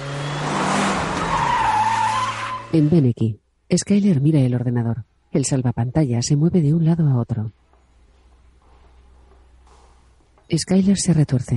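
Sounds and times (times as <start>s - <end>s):
car engine roaring while speeding out onto a road: 0.0s - 2.9s
car tires squealing while speeding out onto a road: 0.0s - 2.9s
speech: 2.7s - 7.6s, 10.5s - 11.5s.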